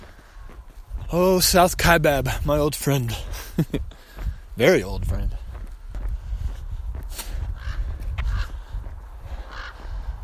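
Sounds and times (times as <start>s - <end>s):
footsteps: 0.0s - 10.2s
outdoor wind: 0.0s - 10.2s
speech: 1.1s - 4.0s, 4.6s - 5.4s
crows cawing overhead: 7.5s - 10.2s.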